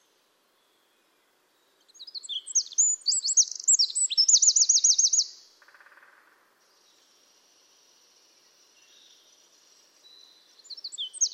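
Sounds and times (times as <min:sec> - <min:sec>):
Eurasian wren Troglodytes troglodytes singing: 0:01.9 - 0:05.4, 0:10.1 - 0:11.3.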